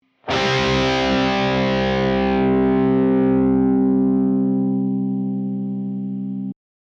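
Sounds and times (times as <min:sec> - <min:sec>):
guitar power chords: 0:00.1 - 0:06.6.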